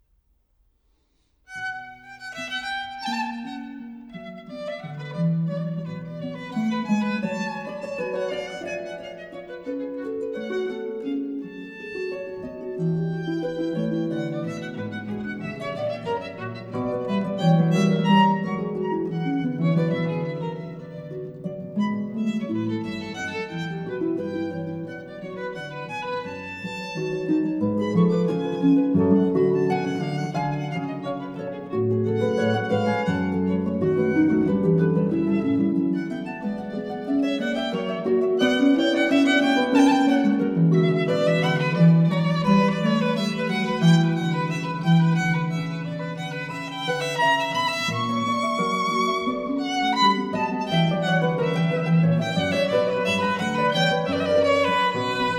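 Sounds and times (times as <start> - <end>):
violin and keyboard sonata allegro: 4.6 - 21.1, 21.8 - 55.3.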